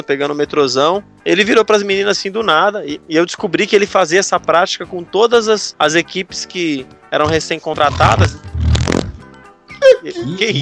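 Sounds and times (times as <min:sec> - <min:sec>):
speech: 0:00.0 - 0:08.6, 0:10.0 - 0:10.6
loud low rumbling fart: 0:07.3 - 0:09.3.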